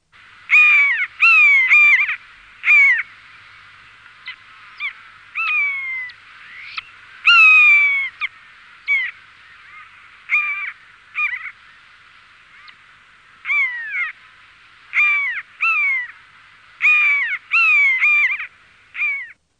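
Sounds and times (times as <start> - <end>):
common buzzard calling: 0.2 - 19.4.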